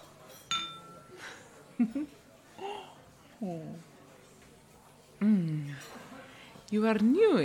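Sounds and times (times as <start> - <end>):
glasses clinking in a toast: 0.0 - 1.4
speech: 1.8 - 2.7, 3.4 - 3.9, 5.2 - 6.1, 6.7 - 7.4.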